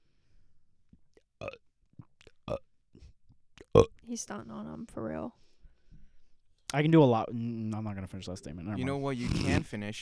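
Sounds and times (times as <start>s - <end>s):
person burping on command: 1.4s - 1.6s, 2.2s - 2.7s, 3.6s - 4.0s
speech: 3.8s - 5.4s, 6.7s - 9.9s.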